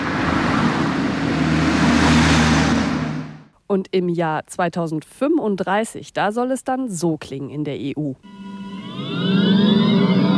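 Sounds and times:
street traffic with combustion-engine cars: 0.0 - 3.5
speech: 3.7 - 9.5.

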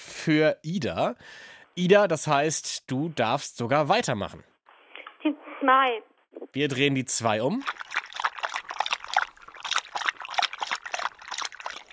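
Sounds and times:
speech: 0.2 - 4.5, 5.6 - 7.8
small splashes and dribbles of water: 6.8 - 11.9
dog lapping water: 7.6 - 11.9.

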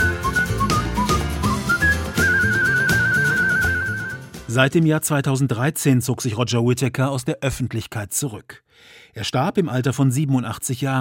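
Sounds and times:
clear melodic human whistling of a tune: 0.0 - 4.3
full instrumental backing music: 0.0 - 4.8
speech: 4.5 - 10.9.

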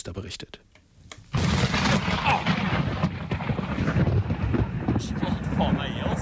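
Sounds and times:
speech: 0.0 - 0.6
loud thunderclap from a lightning strike during a severe storm on a high plateau in southern Norway: 1.3 - 6.2
wind buffeting the phone microphone: 1.4 - 6.2.

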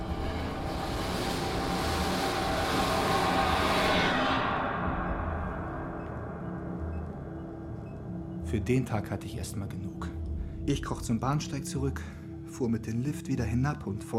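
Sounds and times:
train rushing past in an unlit space: 0.0 - 6.7
speech: 8.5 - 14.1.

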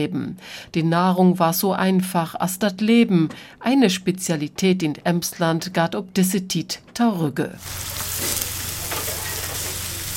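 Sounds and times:
speech: 0.0 - 8.3
grey buckwheat pancake batter frying in a pan on an old kitchen cooking stove: 7.6 - 10.1.

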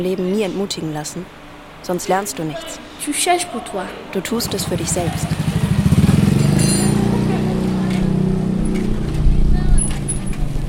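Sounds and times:
speech: 0.0 - 5.4
faint street babble: 0.0 - 10.6
motorcycle engines revving on red sand roads in Burkina Faso: 4.3 - 10.6.

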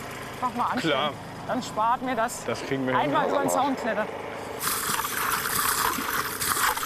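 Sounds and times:
speech: 0.4 - 4.7
water running from a small tap: 4.6 - 6.8.

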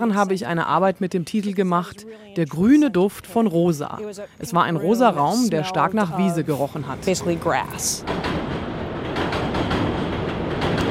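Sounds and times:
speech: 0.0 - 8.4
train rattling across an elevated bridge above a former sugar factory: 5.7 - 10.9.

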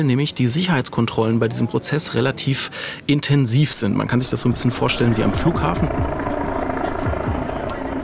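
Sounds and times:
speech: 0.0 - 6.4
helicopter hovering overhead: 3.9 - 8.0.

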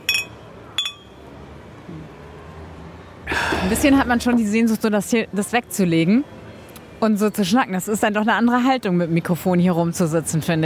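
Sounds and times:
beer glasses clinking in a toast at a bar: 0.0 - 1.2
speech: 3.6 - 6.4, 7.0 - 10.6.

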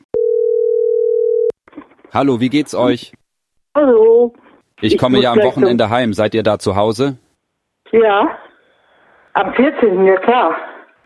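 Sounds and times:
telephone ringing tone before call connects: 0.2 - 1.5
speech: 2.1 - 3.2, 3.8 - 7.2, 7.9 - 8.4, 9.3 - 10.7.

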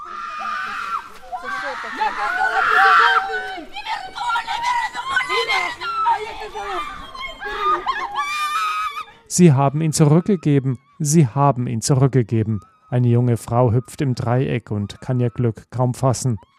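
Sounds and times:
loud high scream: 0.0 - 3.6, 5.0 - 9.3
excited crowd voices chattering and calling out: 0.0 - 8.4
laughter: 0.4 - 10.8
speech: 1.8 - 3.6, 9.4 - 16.5.

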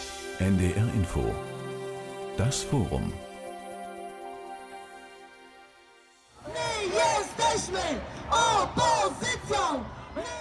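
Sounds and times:
speech: 0.4 - 1.5, 2.4 - 3.3
crowd of women chanting slogans at a street protest: 6.4 - 10.4.

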